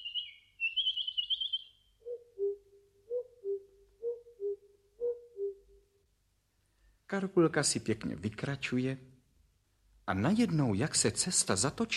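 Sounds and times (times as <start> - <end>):
bird trilling in a forest: 0.0 - 5.6
speech: 7.1 - 9.1, 10.1 - 11.9.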